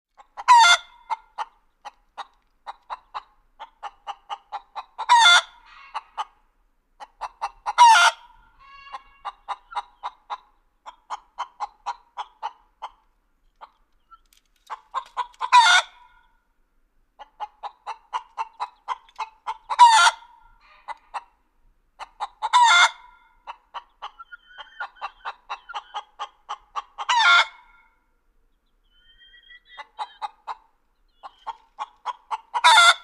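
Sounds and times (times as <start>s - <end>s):
chickens clucking on a farm: 0.1s - 16.4s, 17.1s - 33.0s.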